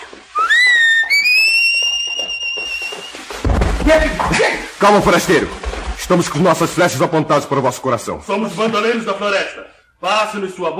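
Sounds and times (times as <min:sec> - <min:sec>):
loud rising whistle: 0:00.4 - 0:03.3
dull thumping noises: 0:02.1 - 0:06.4
speech: 0:03.9 - 0:10.7.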